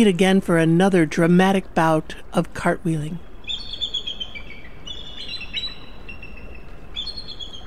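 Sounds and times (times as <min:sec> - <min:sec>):
speech: 0:00.0 - 0:03.3
constant low rumble and hiss: 0:00.0 - 0:07.6
eagles giving high thin chittering calls: 0:03.2 - 0:07.6.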